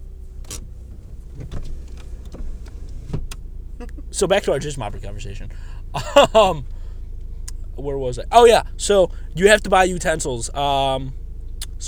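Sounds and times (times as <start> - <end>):
car engine rumble edging forward at a drive-thru: 0.0 - 11.8
speech: 4.2 - 6.8, 7.8 - 11.2
laughter: 5.9 - 6.7.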